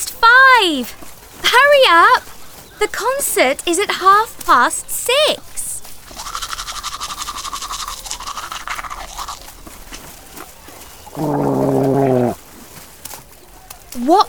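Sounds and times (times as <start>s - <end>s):
gurgling water: 0.0s - 14.2s
speech: 0.6s - 5.6s, 11.2s - 11.4s, 14.1s - 14.2s
toothbrush scrubbing teeth: 5.5s - 12.8s.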